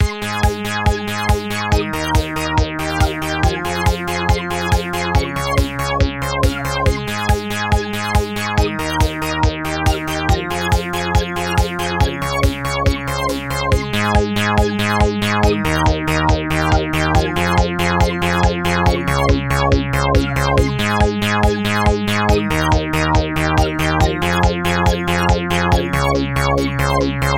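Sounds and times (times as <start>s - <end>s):
Roland JX-8P synth bass: 0.0s - 27.3s.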